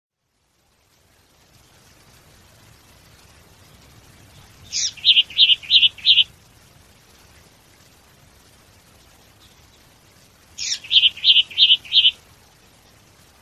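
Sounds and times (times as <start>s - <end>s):
bird chirping: 3.6s - 6.3s, 10.6s - 12.2s.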